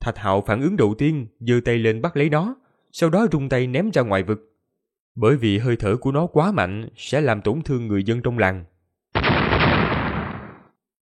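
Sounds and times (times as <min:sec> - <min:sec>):
speech: 0:00.0 - 0:04.5, 0:05.2 - 0:08.7
huge explosion of great stars struck by a hurled stone: 0:09.2 - 0:10.7.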